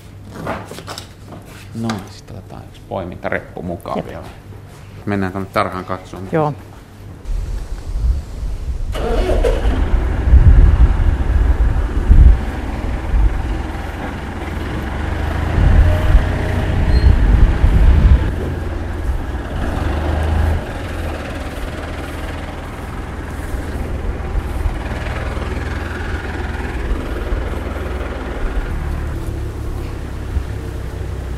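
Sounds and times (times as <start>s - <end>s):
speech: 1.8s - 4.4s, 5.0s - 6.7s
tractor engine turning over and starting: 8.8s - 31.3s.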